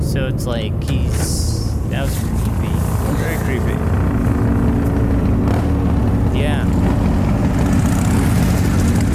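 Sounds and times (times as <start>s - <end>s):
speech: 0.1s - 4.5s
loud motorcycle engine roaring: 1.0s - 9.1s.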